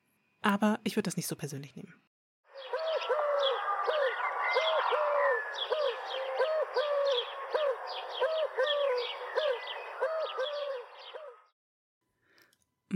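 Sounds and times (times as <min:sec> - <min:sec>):
speech: 0:00.4 - 0:02.1
birds chirping and twittering: 0:02.5 - 0:11.6
Eurasian collared dove cooing: 0:02.6 - 0:11.5.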